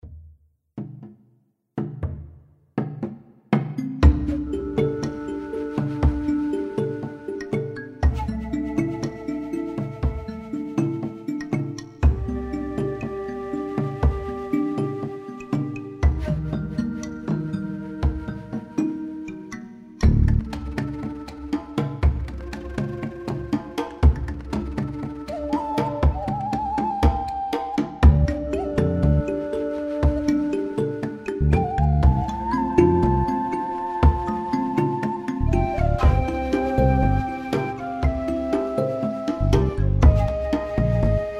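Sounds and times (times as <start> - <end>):
background music: 3.8 - 41.3.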